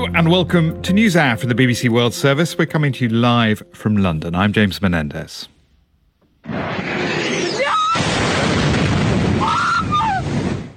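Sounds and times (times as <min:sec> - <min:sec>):
speech: 0:00.0 - 0:05.6
explosion from missile and drone attacks: 0:06.4 - 0:10.7.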